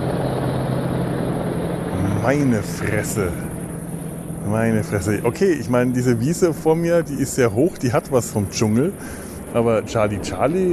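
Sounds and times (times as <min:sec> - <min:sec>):
two very large helicopters flying low overhead: 0:00.0 - 0:10.7
speech: 0:02.3 - 0:03.5, 0:04.4 - 0:10.7.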